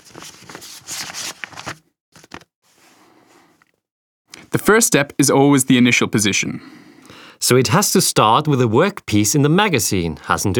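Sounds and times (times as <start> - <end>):
sheet of paper rustling and crinkling: 0.0 - 3.0
speech: 4.6 - 6.8, 7.4 - 10.5.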